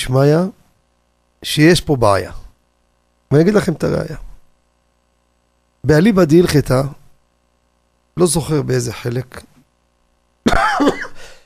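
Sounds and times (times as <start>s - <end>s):
speech: 0.0s - 0.6s, 1.4s - 2.4s, 3.3s - 4.3s, 5.8s - 7.0s, 8.2s - 9.5s, 10.8s - 11.0s
harsh throaty cough with raspy throat-clearing tail: 10.5s - 11.4s.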